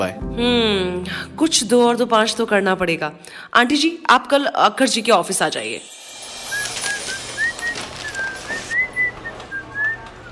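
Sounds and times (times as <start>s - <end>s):
speech: 0.0s - 6.0s
woman whistling a light wavering tune: 6.4s - 10.3s.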